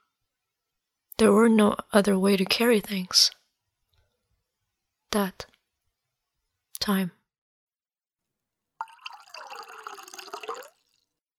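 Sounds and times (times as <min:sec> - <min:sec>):
speech: 0:01.2 - 0:03.4, 0:05.1 - 0:05.5, 0:06.8 - 0:07.2
water pouring into a glass: 0:08.8 - 0:11.2.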